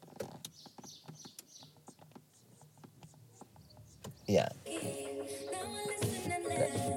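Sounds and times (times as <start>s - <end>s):
speech: 4.3s - 5.0s
upbeat pop music playing on car stereo: 4.6s - 6.9s.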